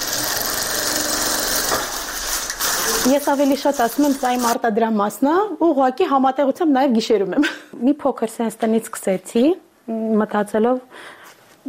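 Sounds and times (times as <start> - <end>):
sewing machine clattering and whirring in a cramped apartment: 0.0 - 4.6
speech: 3.0 - 11.6.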